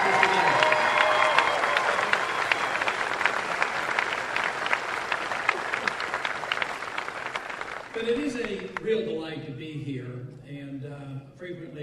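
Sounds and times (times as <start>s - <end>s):
audience applause at a speech: 0.0s - 9.0s.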